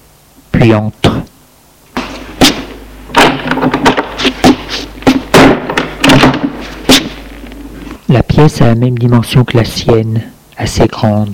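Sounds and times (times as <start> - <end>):
speech: 0.6 - 1.3, 8.4 - 11.3
door slamming shut: 2.0 - 4.1, 5.1 - 7.2.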